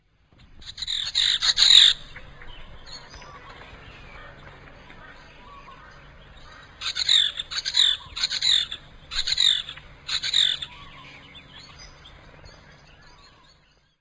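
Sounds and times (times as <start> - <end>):
forest kingfisher calling: 0.6 - 13.5.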